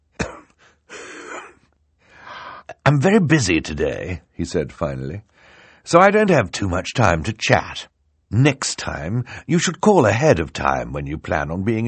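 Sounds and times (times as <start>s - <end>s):
man coughing into a handkerchief: 0.2s - 1.7s
speech: 2.9s - 11.8s.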